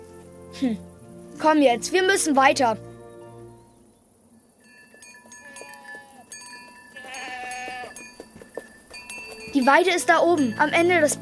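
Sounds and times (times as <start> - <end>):
speech: 0.6 - 2.9, 9.6 - 11.1
faint bell clinking: 4.6 - 11.1
goats bleating: 5.4 - 8.1, 10.4 - 11.1.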